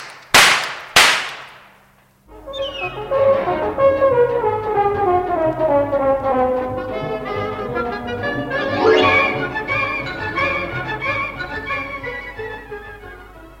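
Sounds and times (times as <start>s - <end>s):
gunshots fired by customs police: 0.0s - 1.7s
music: 2.3s - 13.5s.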